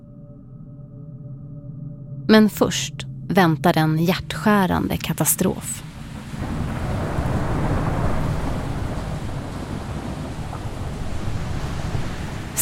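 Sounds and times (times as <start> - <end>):
speech: 2.3 - 5.9
storm floodwater rushing over the streets of Vega Baja Puerto Rico: 4.5 - 12.5
gusty wind-blown hiss: 5.8 - 12.5.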